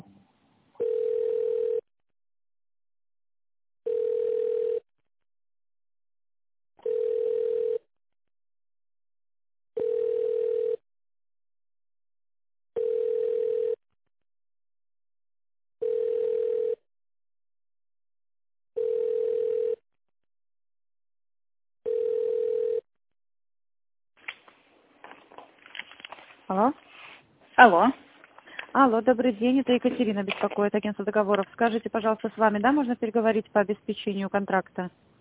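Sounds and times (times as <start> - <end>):
ringback tone on a telephone line while an office call is transferred: 0.8 - 1.9, 3.9 - 4.9, 6.9 - 7.8, 9.8 - 10.8, 12.8 - 13.8, 15.8 - 16.8, 18.8 - 19.8, 21.9 - 22.9
speech: 26.5 - 26.9, 27.6 - 28.0, 28.8 - 35.1.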